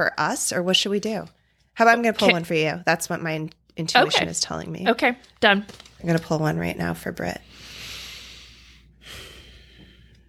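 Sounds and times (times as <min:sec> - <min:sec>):
speech: 0:00.0 - 0:07.7
deep slow inhales while concentrating: 0:07.4 - 0:10.2.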